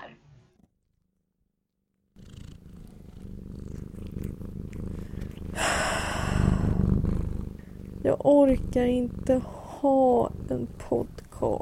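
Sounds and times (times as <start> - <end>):
cat purring: 2.2 - 11.6
speech: 8.1 - 11.6.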